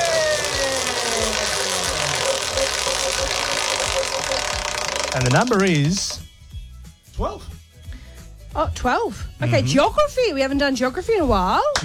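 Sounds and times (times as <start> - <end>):
loud steady mechanical hum: 0.0 - 6.2
quiz game prize wheel pawl ratcheting ticks: 0.0 - 6.2
speech: 5.2 - 6.2, 7.2 - 7.5, 8.6 - 11.8.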